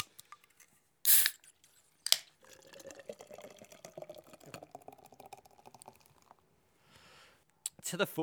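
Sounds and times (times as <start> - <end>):
stout fizzing and gurgling as it is poured: 1.1 - 1.3, 2.1 - 6.5
Guinness can cracking open with hiss: 1.1 - 2.3.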